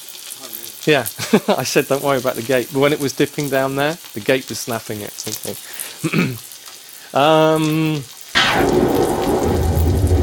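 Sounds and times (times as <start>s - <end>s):
cartoonish synthesized rainfall hissing: 0.0s - 10.2s
speech: 0.7s - 6.5s, 7.1s - 9.2s
cartoonish synthesized thunder crash: 8.4s - 10.2s
synthesized tonal buzzing: 8.4s - 10.2s.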